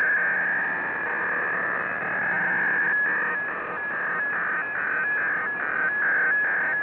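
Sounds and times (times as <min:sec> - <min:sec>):
North Korean diplomatic serial tone modem signal running 300 Bd: 0:00.0 - 0:06.8.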